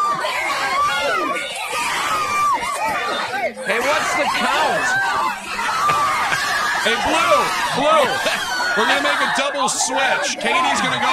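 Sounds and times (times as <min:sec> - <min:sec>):
dense crowd screaming in stadium stands: 0:00.0 - 0:11.1
scattered chatter: 0:00.0 - 0:11.1
laughter: 0:02.9 - 0:11.1
speech: 0:06.9 - 0:11.1.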